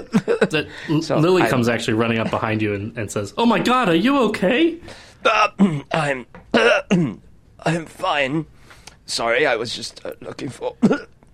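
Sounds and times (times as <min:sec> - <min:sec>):
speech: 0:00.2 - 0:11.1
person acting out rough throaty coughs: 0:05.2 - 0:07.2, 0:10.8 - 0:11.1.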